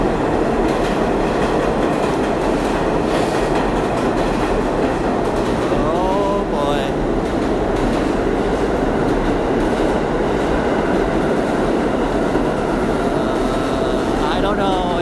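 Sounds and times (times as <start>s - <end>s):
A train subway train roaring through a station: 0.0s - 15.0s.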